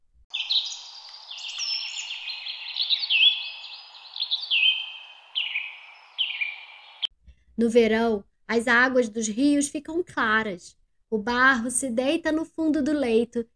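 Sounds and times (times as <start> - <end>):
birds chirping and singing: 0.3 - 7.1
speech: 7.6 - 13.5.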